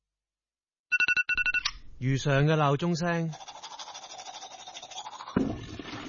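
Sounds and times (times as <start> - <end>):
speech: 2.0 - 3.5
toothbrush scrubbing during a morning routine: 3.0 - 6.0.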